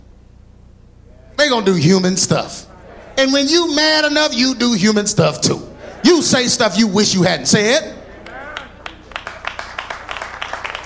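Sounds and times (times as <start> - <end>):
low murmur: 0.3 - 9.1
speech: 1.4 - 8.0
steady sharp hand clapping: 8.2 - 10.8.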